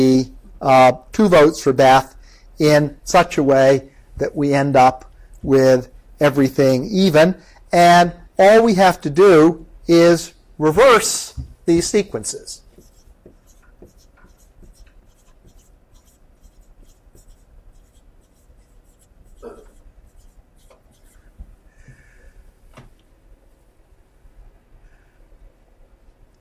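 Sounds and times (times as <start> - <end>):
speech: 0.0 - 12.6
handwriting letters backwards, scratching and tapping strokes: 12.7 - 21.3
squeaky marks: 12.8 - 21.2.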